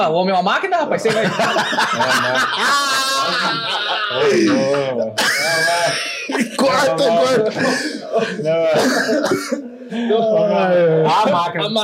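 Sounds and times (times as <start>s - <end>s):
speech: 0.0s - 11.8s
chatter: 0.9s - 11.8s
laughter: 1.0s - 11.7s
man coughing and clearing his throat: 4.1s - 9.8s.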